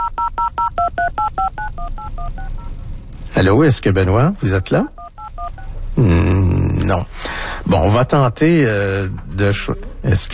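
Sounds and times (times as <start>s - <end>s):
touch-tone keypad beeps dialing a cellphone number: 0.0s - 2.7s
speech: 3.4s - 5.0s, 6.0s - 10.3s.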